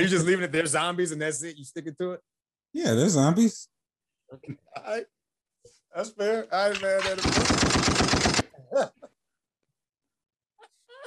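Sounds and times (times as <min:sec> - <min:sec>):
speech: 0:00.0 - 0:03.7, 0:04.3 - 0:05.2, 0:05.9 - 0:09.0
soundboard gunfire sound effect: 0:06.7 - 0:08.5.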